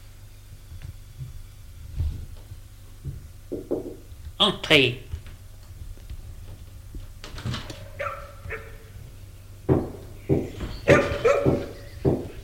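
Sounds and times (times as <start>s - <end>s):
low hum: 0.0s - 12.4s
speech: 4.4s - 5.0s
dogs barking in a drawing room: 7.4s - 12.4s
dogs whimpering in a drawing room: 7.7s - 9.2s, 10.4s - 12.4s.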